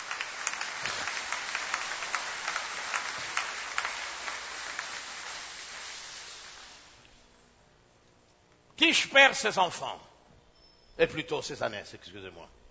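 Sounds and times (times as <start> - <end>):
church congregation applauding: 0.0 - 7.0
speech: 8.8 - 10.1, 11.0 - 12.6.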